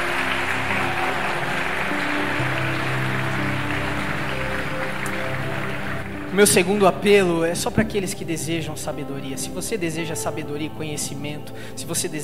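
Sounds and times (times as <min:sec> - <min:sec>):
church audience applauding: 0:00.0 - 0:07.2
faint sustained musical tones: 0:00.0 - 0:12.2
speech: 0:06.4 - 0:12.2.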